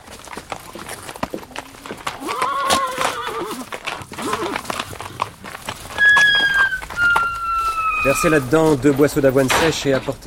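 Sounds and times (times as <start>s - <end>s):
hooves thudding and shuffling on a hard floor: 0.1s - 10.2s
horses in a stable whinnying with wavering neighs: 0.6s - 9.4s
sharp high squeals of horses: 5.9s - 9.2s
speech: 8.1s - 10.2s.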